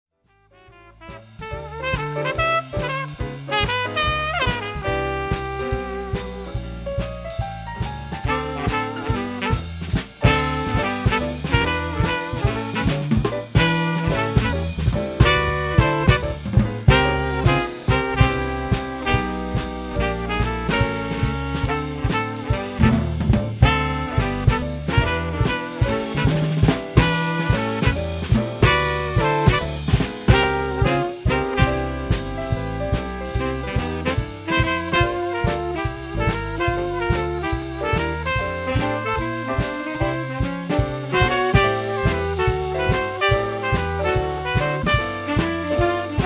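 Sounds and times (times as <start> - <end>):
swing band combo playing: 0.3 - 46.2.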